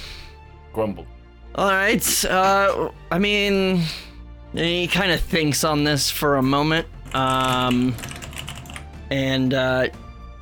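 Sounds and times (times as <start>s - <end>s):
speech: 0.7s - 8.2s, 9.1s - 10.0s
loud computer keyboard typing: 7.0s - 8.9s.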